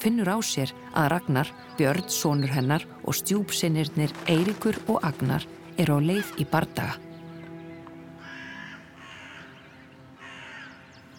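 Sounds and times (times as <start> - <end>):
speech: 0.0 - 7.0
crows and ravens cawing: 7.2 - 11.1.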